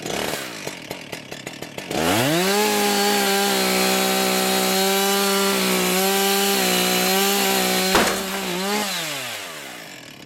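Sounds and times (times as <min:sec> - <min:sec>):
chainsaw cutting a bent tree trunk under tension on a tree-bending simulator: 0:00.0 - 0:10.2
bent tree trunk cracking as it gives way: 0:07.1 - 0:09.3.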